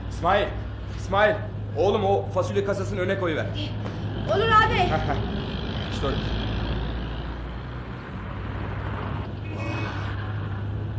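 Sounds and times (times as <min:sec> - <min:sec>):
pickup truck engine rumbling: 0:00.0 - 0:10.9
speech: 0:00.2 - 0:06.4.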